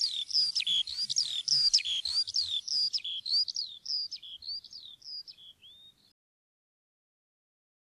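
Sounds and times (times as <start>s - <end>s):
Eurasian skylark song of quick sliding chirps and whistles: 0.0s - 6.2s.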